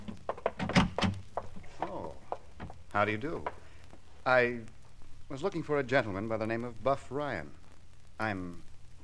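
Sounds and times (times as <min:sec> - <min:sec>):
front door thunk: 0:00.5 - 0:01.2
speech: 0:03.0 - 0:03.6, 0:04.3 - 0:04.7, 0:05.3 - 0:07.6, 0:08.2 - 0:09.0.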